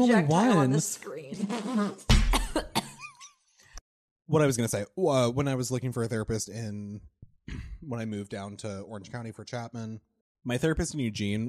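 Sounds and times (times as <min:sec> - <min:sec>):
speech: 0:00.0 - 0:02.7, 0:04.3 - 0:11.4
person coughing after coffee went down the wrong way: 0:02.3 - 0:03.1.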